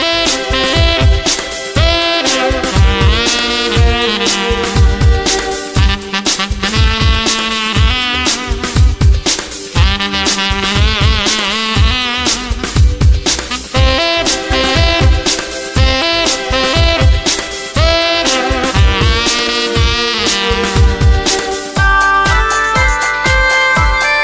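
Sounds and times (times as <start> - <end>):
saxophone: 0.0 - 24.2.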